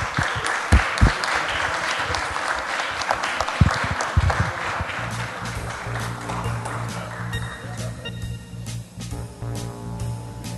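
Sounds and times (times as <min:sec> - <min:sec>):
audience applause at a craft beer event: 0:00.0 - 0:08.0
steady music: 0:03.6 - 0:10.5.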